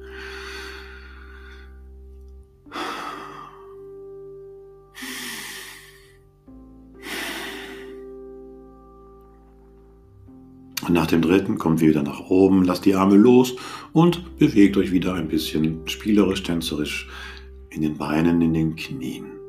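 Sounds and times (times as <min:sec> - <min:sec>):
slow deep breathing during a yoga session: 0:00.0 - 0:04.3, 0:04.9 - 0:08.4, 0:13.6 - 0:14.0, 0:17.1 - 0:17.6
speech: 0:10.9 - 0:19.4.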